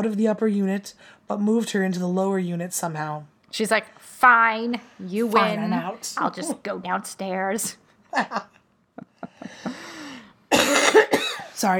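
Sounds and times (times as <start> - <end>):
speech: 0.0 - 9.8, 10.9 - 11.7
person coughing: 10.5 - 11.6.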